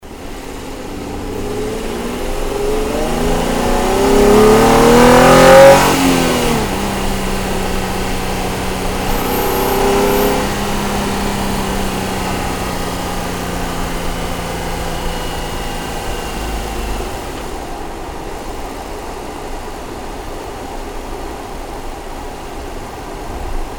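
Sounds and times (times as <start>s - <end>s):
Nissan 350Z car engine bay accelerating rapidly: 0.0s - 18.9s.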